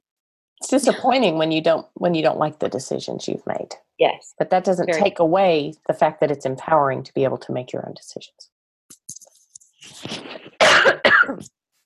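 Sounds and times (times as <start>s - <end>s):
speech: 0.6s - 9.1s
person coughing: 10.1s - 11.5s.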